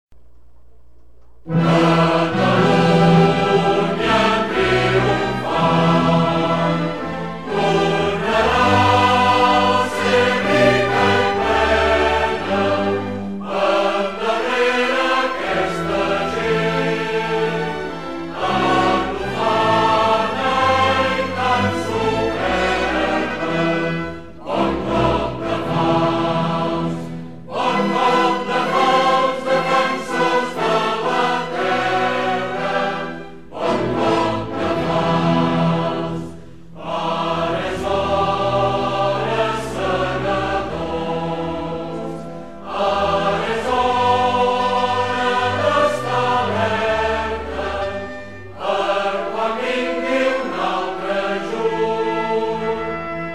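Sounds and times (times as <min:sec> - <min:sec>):
national anthem: 0:01.4 - 0:53.3.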